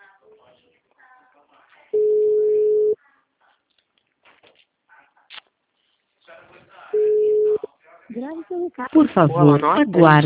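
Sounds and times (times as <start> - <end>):
telephone ringback tone while a call waits for an answer: 2.0 - 3.0, 7.0 - 7.6
speech: 8.2 - 10.2.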